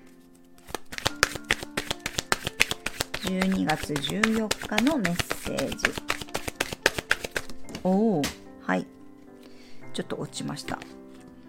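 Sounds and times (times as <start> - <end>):
oracle cards shuffled by hand: 0.1 - 9.0
speech: 3.2 - 6.0, 7.8 - 8.9, 10.0 - 11.0.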